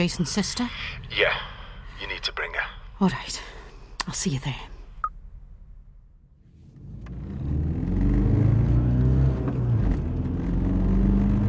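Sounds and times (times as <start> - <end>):
speech: 0.0 - 3.5, 4.1 - 4.7
car engine accelerating while driving fast: 6.4 - 11.4.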